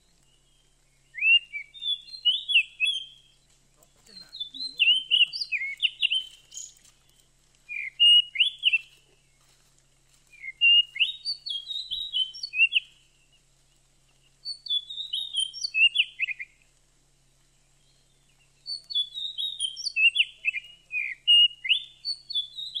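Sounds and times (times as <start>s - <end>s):
Oriental magpie-robin singing rich varied whistles: 0.0s - 6.9s, 7.7s - 9.0s, 10.3s - 13.0s, 14.4s - 16.6s, 17.8s - 22.7s.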